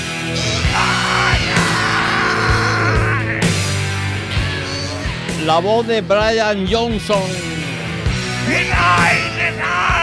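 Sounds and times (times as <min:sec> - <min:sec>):
loud rock song with heavy guitars and thumping drums: 0:00.0 - 0:10.0
rock singer's long strained high-pitched scream: 0:00.4 - 0:05.1, 0:08.4 - 0:10.0
speech: 0:05.5 - 0:07.6, 0:08.4 - 0:10.0.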